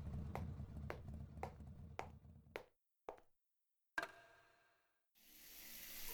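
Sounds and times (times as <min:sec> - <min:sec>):
rhythmic taps: 0:00.0 - 0:03.2
shower water running: 0:05.2 - 0:06.1.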